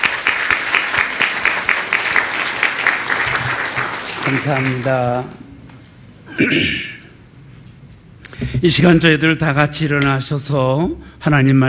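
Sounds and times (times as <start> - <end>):
crowd applauding in a large room: 0.0 - 5.5
speech: 4.3 - 5.4, 6.4 - 6.9, 8.6 - 11.6.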